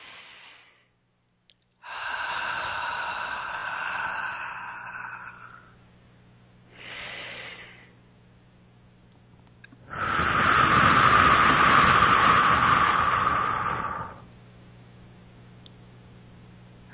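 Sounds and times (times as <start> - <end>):
slow deep breathing in through the nose and out through the mouth: 0.0 - 1.0, 1.8 - 5.8, 6.7 - 8.0, 9.8 - 14.3.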